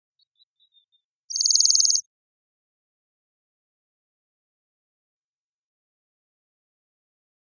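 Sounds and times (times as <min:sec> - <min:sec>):
Bohemian waxwing Bombycilla garrulus trill: 0:01.3 - 0:02.0.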